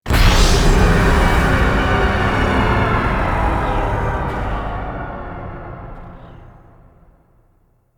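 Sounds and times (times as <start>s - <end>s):
organ stinger: 0.1s - 7.1s.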